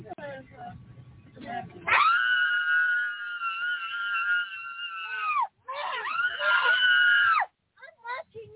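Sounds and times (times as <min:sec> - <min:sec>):
woman screaming on an airplane: 0:01.9 - 0:07.5.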